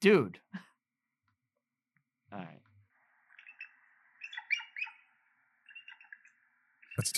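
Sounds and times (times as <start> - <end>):
speech: 0.0 - 0.6, 2.3 - 2.6, 7.0 - 7.1
bald eagle high-pitched chittering calls: 3.1 - 7.0.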